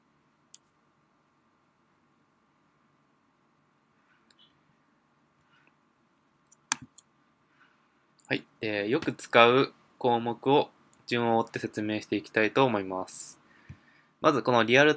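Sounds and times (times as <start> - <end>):
computer mouse clicks: 0.5 - 0.8, 6.5 - 7.1
speech: 8.3 - 13.4, 14.2 - 14.9.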